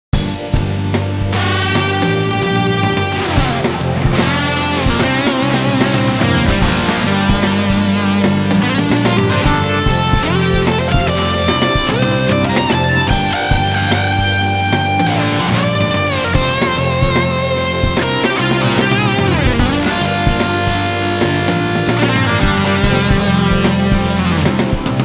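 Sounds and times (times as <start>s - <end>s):
fuzz echo effect: 0.2s - 25.0s.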